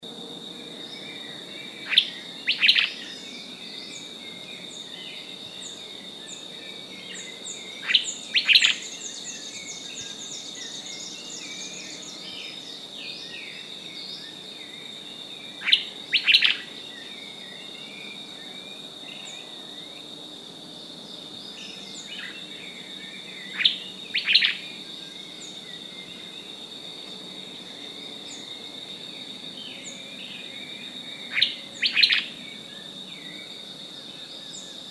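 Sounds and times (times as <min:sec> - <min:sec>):
tuque bird singing: 0:00.5 - 0:20.2, 0:21.0 - 0:34.8.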